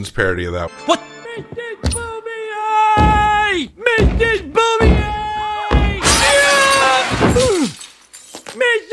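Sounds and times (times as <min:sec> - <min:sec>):
speech: 0:00.0 - 0:02.0, 0:03.5 - 0:05.1
heavy thud of someone falling: 0:03.0 - 0:06.2
glass shattering as someone falls through: 0:06.0 - 0:08.6
glass shards ringing and tinkling: 0:06.1 - 0:08.6.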